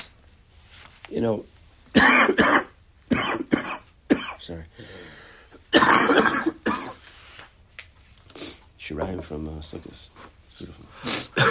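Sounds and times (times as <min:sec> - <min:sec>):
speech: 0:01.1 - 0:02.3, 0:09.0 - 0:11.1
harsh loud coughs: 0:02.0 - 0:04.4, 0:05.7 - 0:07.0, 0:11.1 - 0:11.4
faint breathy sound: 0:04.7 - 0:05.6.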